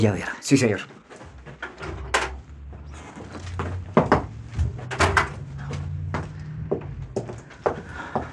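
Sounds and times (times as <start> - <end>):
speech: 0.0 - 1.0
sharp knocks, clicks and rattles of a door: 1.2 - 2.9, 3.5 - 7.8
door slowly pushed open with a low drawn-out creak: 1.4 - 5.8.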